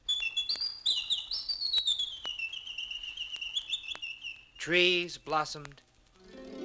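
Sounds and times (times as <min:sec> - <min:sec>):
sharp bird chirps: 0:00.0 - 0:04.6
speech: 0:04.6 - 0:05.8.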